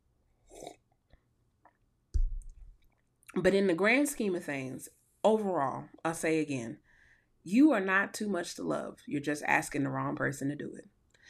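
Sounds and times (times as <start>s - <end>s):
low gulp or swallow: 0.4s - 0.9s
wet slurping sip of coffee: 0.4s - 0.9s
speech: 3.4s - 6.8s, 7.4s - 11.2s.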